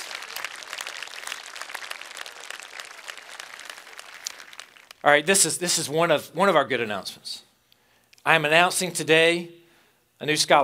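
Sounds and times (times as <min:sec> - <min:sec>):
audience of students applauding: 0:00.0 - 0:05.2
speech: 0:05.0 - 0:07.5, 0:08.2 - 0:09.6, 0:10.2 - 0:10.6.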